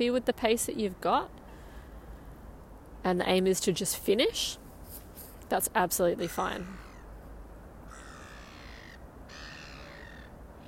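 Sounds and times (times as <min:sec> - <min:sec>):
speech: 0:00.0 - 0:01.4, 0:03.0 - 0:04.6, 0:05.5 - 0:06.8
crow cawing: 0:06.2 - 0:07.1, 0:07.9 - 0:10.6.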